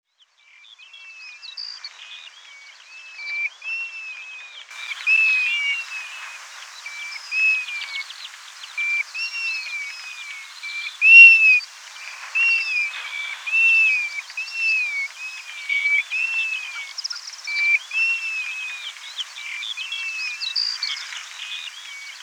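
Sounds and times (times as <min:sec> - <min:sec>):
European golden plover flight display call: 0:04.8 - 0:22.2.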